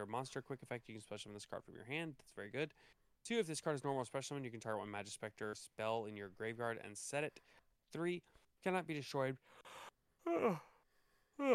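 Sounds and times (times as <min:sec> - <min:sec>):
speech: 0:00.0 - 0:10.7, 0:11.4 - 0:11.5
stifled yawn: 0:09.6 - 0:10.8, 0:11.4 - 0:11.5.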